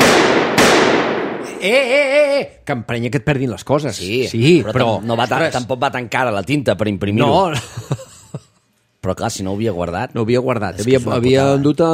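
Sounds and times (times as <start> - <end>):
pistol gunshot: 0.0 - 1.5
laughter: 1.5 - 2.4, 7.4 - 8.6
speech: 1.6 - 8.4, 9.0 - 11.9.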